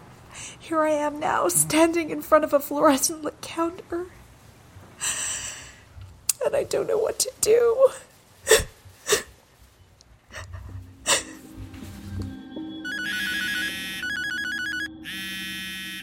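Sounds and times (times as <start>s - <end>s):
speech: 0.7s - 4.2s, 6.4s - 8.6s
mobile phone ringtone ringing: 12.4s - 16.0s.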